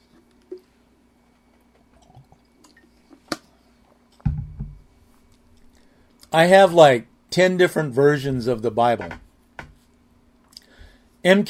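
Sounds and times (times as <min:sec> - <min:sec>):
person drinking water: 0:00.1 - 0:04.2
speech: 0:06.3 - 0:09.2, 0:11.2 - 0:11.4.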